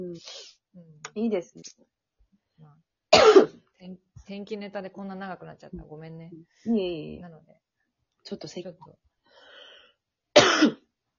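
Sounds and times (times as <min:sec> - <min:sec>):
speech: 0:00.0 - 0:00.5, 0:01.2 - 0:01.9, 0:03.8 - 0:07.6, 0:08.2 - 0:09.0
person with an itchy throat clearing throat: 0:03.2 - 0:03.6, 0:10.4 - 0:10.8.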